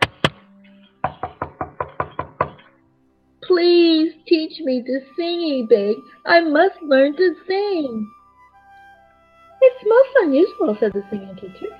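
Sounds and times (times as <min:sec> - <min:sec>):
knocking on a wooden door: 0:01.0 - 0:02.7
speech: 0:03.5 - 0:08.2, 0:09.6 - 0:11.7.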